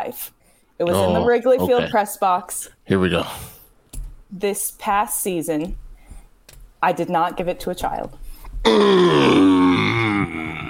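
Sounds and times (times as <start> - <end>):
speech: 0.0 - 3.5, 4.3 - 5.8, 6.8 - 9.5
man's drawn-out groan of approval: 8.6 - 10.6.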